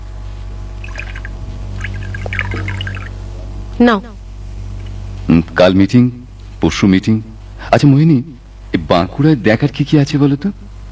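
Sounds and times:
low hum: 0.0 - 10.9
water being poured into a glass: 0.8 - 3.2
speech: 3.8 - 4.2, 5.3 - 10.6.

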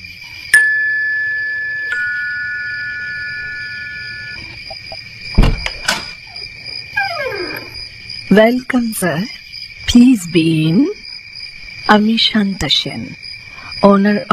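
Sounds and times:
doorbell chime at the front door of a British-style hill mansion: 0.6 - 4.4
dull thuds: 4.7 - 6.2
speech: 8.3 - 11.0, 11.9 - 13.2, 13.8 - 14.3.

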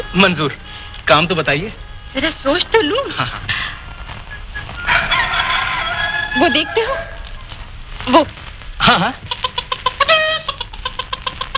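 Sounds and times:
speech: 0.1 - 3.8, 6.3 - 7.2, 8.0 - 9.4
hen squawking and clucking: 3.6 - 7.6, 9.2 - 11.5.

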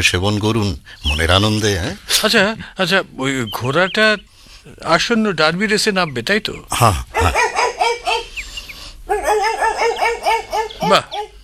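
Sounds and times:
speech: 0.0 - 7.5, 10.8 - 11.2
spaniel barking: 7.1 - 8.3, 9.1 - 11.4.

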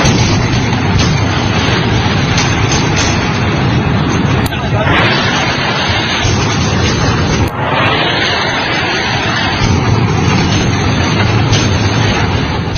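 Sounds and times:
heavy artillery cannon fire booming: 0.0 - 12.7
sharp blasts: 0.0 - 12.7
babble: 4.3 - 7.6.

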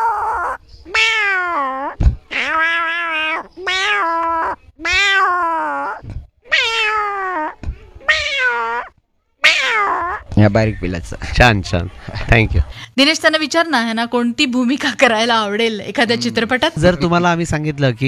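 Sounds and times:
person imitating a cat meowing: 0.0 - 10.2
speech: 10.4 - 18.0.

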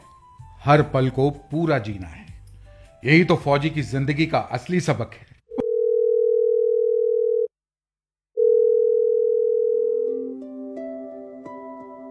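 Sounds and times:
soft music: 0.0 - 4.9, 10.1 - 12.1
speech: 0.7 - 2.2, 3.0 - 5.3
phone ringing with electronic tones: 5.5 - 7.5, 8.4 - 10.3.

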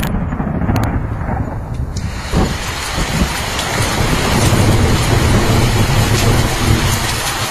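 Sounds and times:
deep low rumble of thunder: 0.0 - 7.4
heavy torrential rain pouring: 0.0 - 7.4.

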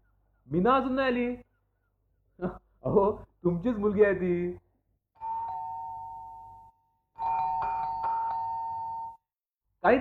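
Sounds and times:
speech: 0.5 - 1.5, 2.4 - 4.6
doorbell chime ringing at a home: 5.2 - 9.3.

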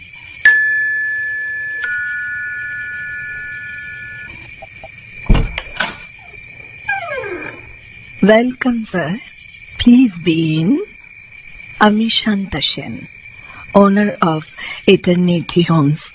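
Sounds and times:
two-tone doorbell chime at the front door of a British-style hill mansion: 0.5 - 4.3
speech: 8.2 - 10.9, 11.8 - 16.1.

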